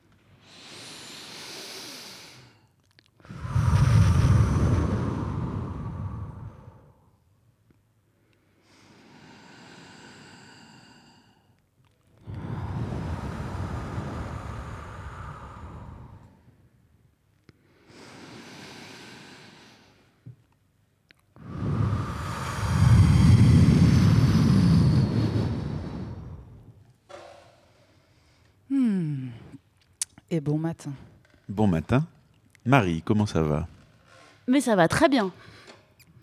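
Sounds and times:
deep slow breathing: 0.2s - 7.3s, 8.2s - 16.9s, 17.5s - 20.5s, 21.4s - 29.7s
speech: 30.3s - 33.8s, 34.5s - 35.5s.

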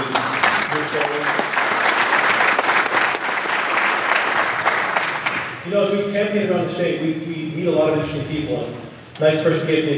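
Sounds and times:
large convention audience applause: 0.0s - 5.6s
speech: 5.7s - 9.9s.

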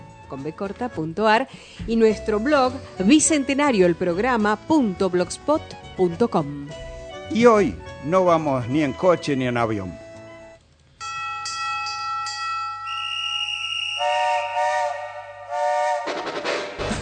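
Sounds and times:
speech: 0.3s - 10.0s
steam train whistle: 12.9s - 16.9s.

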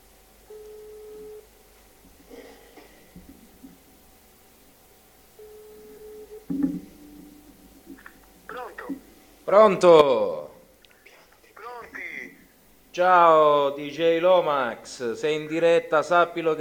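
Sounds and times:
low hum: 0.0s - 16.5s
ringback tone of a phone call placed from a radio studio: 0.5s - 1.4s, 5.4s - 7.5s
speech: 9.5s - 10.4s, 13.0s - 16.5s.

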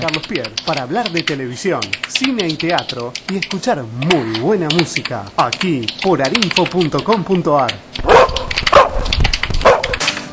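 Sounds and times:
speech: 0.0s - 8.2s
dog barking and yipping: 8.0s - 10.0s.

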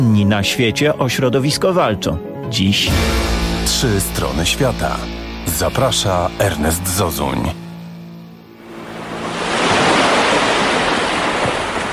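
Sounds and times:
speech: 0.0s - 7.6s
sea waves: 8.6s - 11.9s.

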